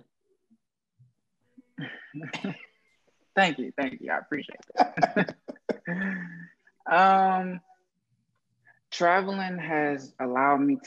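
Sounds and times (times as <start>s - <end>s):
person coughing harshly: 1.8s - 2.7s
speech: 1.8s - 2.7s, 3.4s - 6.1s, 6.9s - 7.6s, 8.9s - 10.8s
laughter: 4.6s - 6.4s.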